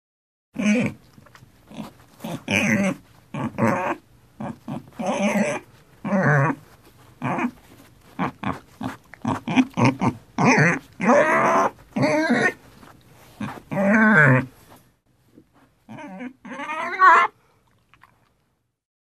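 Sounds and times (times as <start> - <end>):
pig voice: 0.6 - 1.0, 1.7 - 6.6, 7.2 - 7.6, 8.2 - 12.6, 13.4 - 14.5, 15.9 - 17.3.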